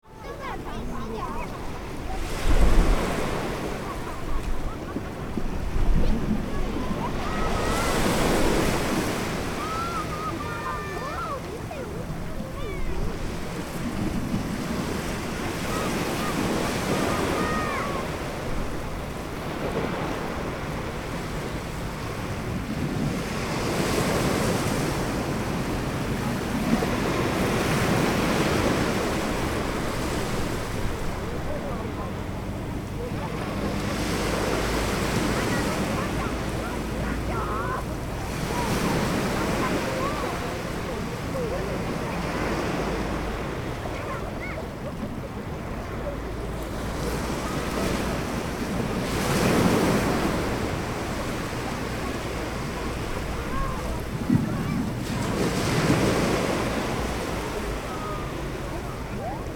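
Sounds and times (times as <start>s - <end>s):
kids in playground with family at beach cove: 0.0s - 20.8s, 28.2s - 59.5s
beach cove ambience: 0.0s - 59.5s.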